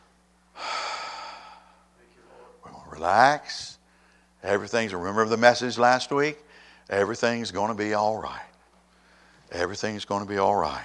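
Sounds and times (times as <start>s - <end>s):
low steady hum: 0.0s - 10.8s
person taking a deep breath: 0.6s - 1.9s, 6.5s - 6.9s, 8.9s - 9.5s
speech: 3.0s - 3.8s, 4.4s - 8.5s, 9.5s - 10.8s.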